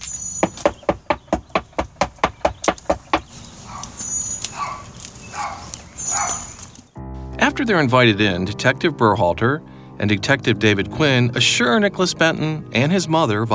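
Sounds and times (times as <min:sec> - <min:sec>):
quiet outdoor noise: 0:00.0 - 0:07.0
firm knocking on a front door: 0:00.4 - 0:03.3
speech: 0:07.6 - 0:13.5.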